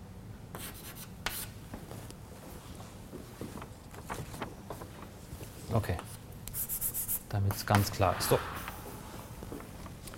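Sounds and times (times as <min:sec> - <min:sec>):
speech: 0:00.6 - 0:01.0, 0:05.7 - 0:06.1, 0:07.3 - 0:08.6
handwriting of formulas scratching: 0:06.6 - 0:07.2.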